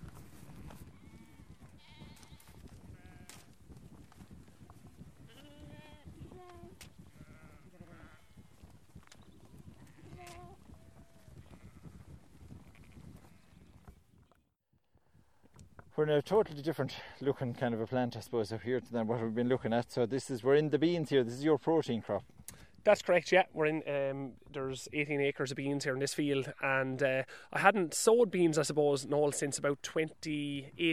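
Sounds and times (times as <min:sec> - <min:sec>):
sheep bleating in a field: 0:01.0 - 0:03.4, 0:05.3 - 0:08.5, 0:09.8 - 0:12.0
speech: 0:16.0 - 0:30.9.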